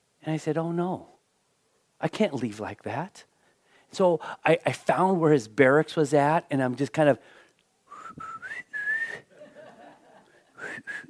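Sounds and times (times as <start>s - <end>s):
speech: 0.2s - 1.1s, 2.0s - 3.3s, 3.9s - 7.4s
man whistling to call his son at barracks: 7.9s - 9.3s, 10.6s - 11.0s
laughter: 9.3s - 10.5s.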